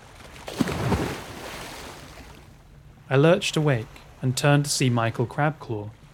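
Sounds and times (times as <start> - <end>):
water washing and lapping: 0.0 - 6.1
heavy splash in deep water: 0.3 - 2.5
speech: 3.1 - 6.0.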